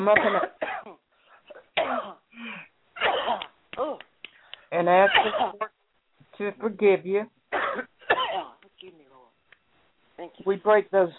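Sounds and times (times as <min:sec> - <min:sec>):
speech: 0:00.0 - 0:00.7, 0:04.7 - 0:05.7, 0:06.4 - 0:07.9, 0:10.2 - 0:11.1
heavy deep harsh coughing: 0:00.0 - 0:03.6, 0:05.0 - 0:05.7, 0:07.5 - 0:08.6.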